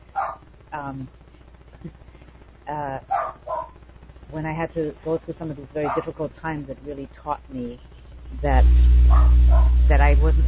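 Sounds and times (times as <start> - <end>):
dog barking at someone walking around the house: 0.1 - 0.5, 3.1 - 3.8, 5.8 - 6.1, 9.1 - 9.8
speech: 0.8 - 2.0, 4.3 - 10.4.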